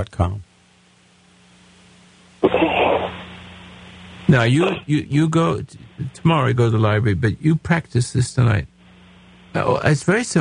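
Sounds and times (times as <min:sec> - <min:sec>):
speech: 0:00.0 - 0:00.5, 0:04.3 - 0:08.7, 0:09.5 - 0:10.3
person sneezing: 0:02.4 - 0:03.2.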